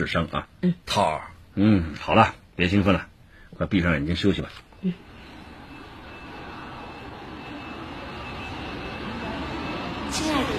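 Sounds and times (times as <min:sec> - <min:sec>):
speech: 0:00.0 - 0:05.1
passenger airplane engine drone with faint high whine: 0:04.6 - 0:10.5
passenger airplane cabin rumble during landing at an airport: 0:04.8 - 0:10.5.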